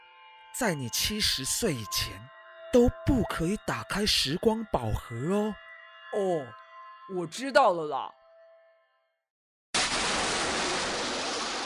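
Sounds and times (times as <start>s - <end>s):
speech: 0.5s - 8.2s
person plunging into the sea: 9.8s - 11.6s.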